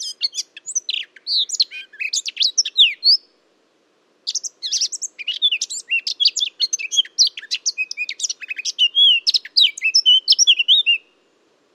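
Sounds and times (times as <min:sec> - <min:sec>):
Eurasian blackcap singing a chattering warble and fluty whistled notes: 0:00.0 - 0:03.3, 0:04.3 - 0:11.3.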